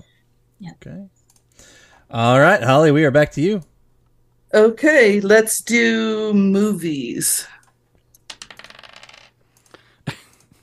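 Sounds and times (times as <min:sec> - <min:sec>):
speech: 0:00.6 - 0:03.7, 0:04.5 - 0:07.6
dice clattering across a hard surface: 0:08.2 - 0:09.4.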